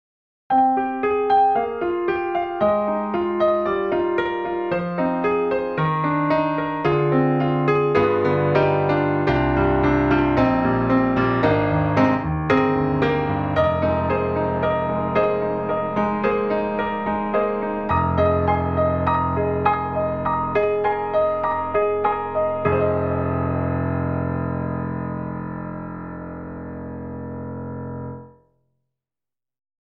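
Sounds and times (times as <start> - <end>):
squashed grand piano: 0.5 - 28.3.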